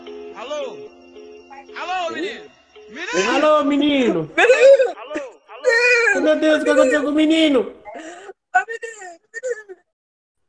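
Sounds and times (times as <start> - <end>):
speech: 1.6 - 4.9, 6.2 - 8.1
child whimpering and crying: 2.9 - 3.5, 4.4 - 7.1, 7.8 - 9.9.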